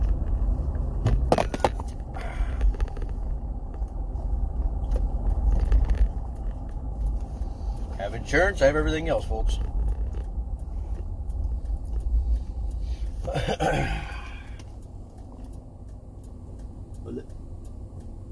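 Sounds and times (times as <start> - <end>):
steady low engine rumble: 0.0 - 18.2
speech: 8.2 - 9.7, 13.6 - 14.0.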